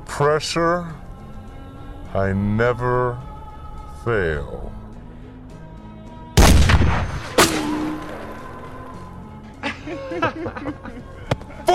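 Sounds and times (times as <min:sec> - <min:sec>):
speech: 0:00.2 - 0:01.0, 0:02.1 - 0:03.3, 0:04.0 - 0:04.8
gunshots during a shooting practice session: 0:06.4 - 0:08.5
laughter: 0:09.6 - 0:11.3.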